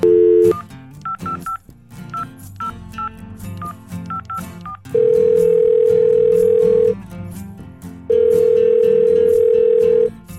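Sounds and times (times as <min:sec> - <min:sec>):
telephone ringback tone: 0:00.0 - 0:00.6, 0:05.0 - 0:06.9, 0:08.1 - 0:10.1
telephone dialing beeps: 0:00.0 - 0:01.6, 0:04.1 - 0:06.9, 0:08.1 - 0:10.1.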